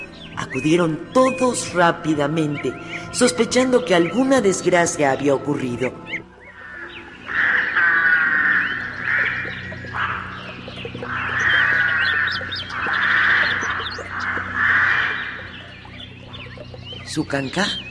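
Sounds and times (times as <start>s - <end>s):
speech: 0.5s - 6.2s, 17.2s - 17.8s
shrill toucan whistle calls: 6.0s - 17.8s.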